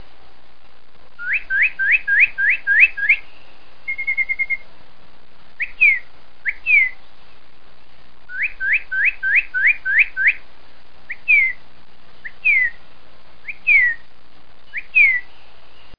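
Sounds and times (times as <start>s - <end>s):
bird calls: 1.2s - 4.7s, 5.6s - 7.4s, 8.3s - 10.4s, 11.1s - 12.8s, 13.4s - 15.9s.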